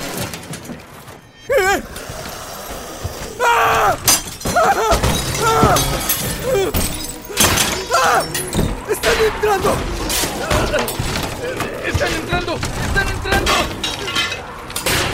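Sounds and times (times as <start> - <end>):
groaning, moaning voices: 1.4 - 14.7
glass windows and doors being smashed: 4.0 - 11.4, 12.0 - 15.1
speech: 9.0 - 9.9, 10.7 - 13.8.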